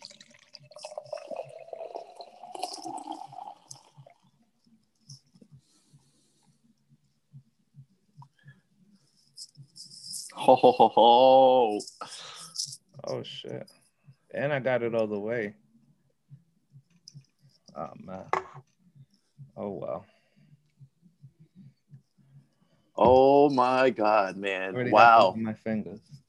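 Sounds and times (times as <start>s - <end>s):
liquid pouring in a gurgling stream: 0.0s - 4.2s
slow drips of liquid: 0.0s - 4.4s
speech: 10.4s - 12.0s, 13.1s - 13.8s, 14.4s - 15.6s, 23.5s - 26.2s.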